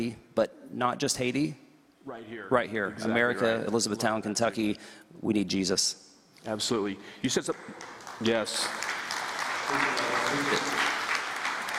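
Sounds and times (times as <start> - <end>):
speech: 0.0 - 9.0, 9.7 - 10.8
audience clapping: 7.4 - 11.7.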